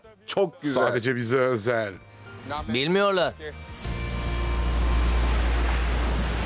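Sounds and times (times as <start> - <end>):
speech: 0.3 - 3.7
ocean surf breaking against a rocky shore at low tide: 4.1 - 6.4.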